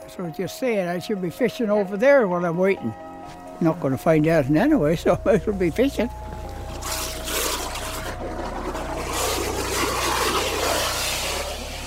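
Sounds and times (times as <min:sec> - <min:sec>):
speech: 0:00.1 - 0:06.2
steady low mechanical hum: 0:04.3 - 0:11.8
water churning and splashing: 0:04.6 - 0:11.8.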